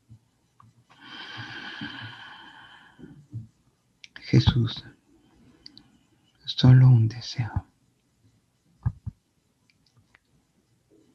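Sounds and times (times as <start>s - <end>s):
deep slow inhalation: 1.0s - 3.2s
speech: 4.3s - 5.0s, 6.6s - 7.7s
soft low thumps: 8.8s - 9.2s.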